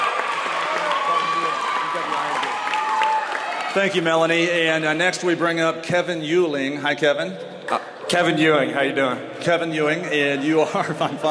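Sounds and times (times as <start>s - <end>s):
faint cheering: 0.0s - 3.9s
audience applause: 0.0s - 4.3s
speech: 3.7s - 11.2s.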